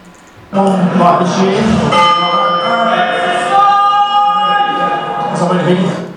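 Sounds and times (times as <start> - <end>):
prison bell ringing: 1.6 - 5.8.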